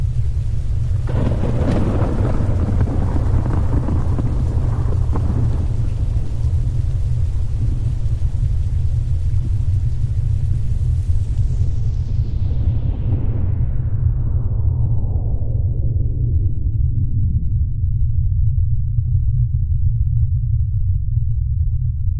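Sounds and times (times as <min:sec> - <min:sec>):
atomic bomb explosion rumble: 0:00.2 - 0:22.1.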